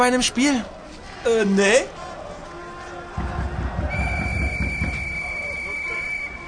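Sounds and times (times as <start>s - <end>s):
speech: 0.0s - 2.0s
low rumbling din in a stadium: 3.1s - 5.5s
referee's whistle blowing in a stadium: 3.9s - 6.4s.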